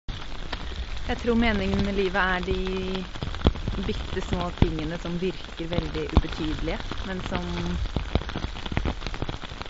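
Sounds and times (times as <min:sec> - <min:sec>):
raindrops pattering on leaves and wet ground in a wet forest: 0:00.0 - 0:09.6
speech: 0:01.1 - 0:08.5.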